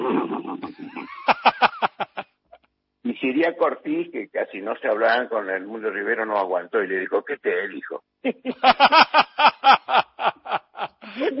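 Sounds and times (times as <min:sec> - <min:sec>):
person's voice imitating a horse's whinny: 0:00.0 - 0:01.0
laughter: 0:00.0 - 0:02.2, 0:08.2 - 0:11.3
speech: 0:03.3 - 0:09.3.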